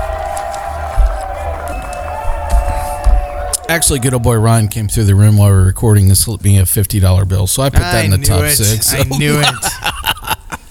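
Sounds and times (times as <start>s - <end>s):
big crowd roaring and cheering: 0.0s - 4.9s
speech: 3.7s - 9.8s
laughter: 8.6s - 10.6s.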